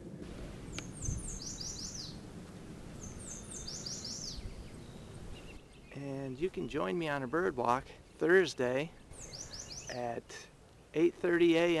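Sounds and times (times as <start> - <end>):
low rumble: 0.0 - 5.6
male Yellow Warbler singing in willow shrubs around wetlands: 0.4 - 11.7
speech: 6.3 - 9.0, 9.9 - 11.7.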